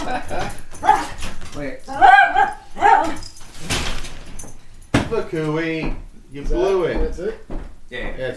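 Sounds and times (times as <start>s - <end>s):
dog whimpering and yipping: 0.0s - 1.2s, 1.9s - 3.4s
speech: 0.1s - 0.6s, 5.3s - 7.4s.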